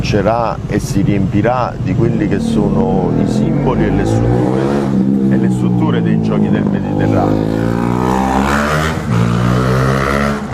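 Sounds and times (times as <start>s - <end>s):
dense street traffic with steady engine rumble: 0.0s - 10.5s
vehicles revving and shifting as they pass: 0.0s - 10.5s
speech: 0.1s - 8.6s.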